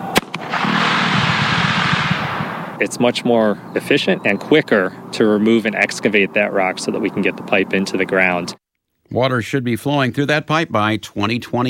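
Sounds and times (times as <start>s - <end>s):
dynamite blast breaking up rock for a pipeline: 0.0s - 2.8s
sharp crack: 0.0s - 2.9s
speech: 2.8s - 11.6s.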